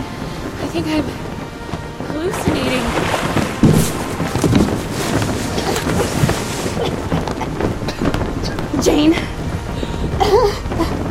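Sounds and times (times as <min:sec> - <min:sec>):
blustery wind rushing over the microphone aboard a boat: 0:00.0 - 0:11.0
speech: 0:00.7 - 0:01.2, 0:02.2 - 0:03.4, 0:08.8 - 0:09.3
moving water hissing aboard a boat: 0:02.3 - 0:07.0.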